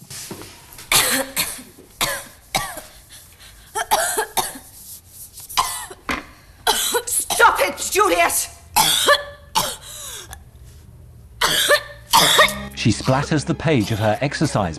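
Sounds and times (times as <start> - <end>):
person coughing in harsh wet bursts: 0.9 - 3.0, 3.7 - 4.7, 5.6 - 6.0, 6.7 - 7.6, 8.8 - 10.4, 11.4 - 14.6
speech: 12.8 - 14.7.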